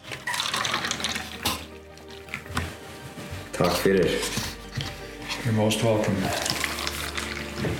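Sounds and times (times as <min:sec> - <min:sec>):
coffee pouring into a cup: 0:00.0 - 0:01.7, 0:06.1 - 0:07.7
speech: 0:03.6 - 0:04.5, 0:05.4 - 0:06.5.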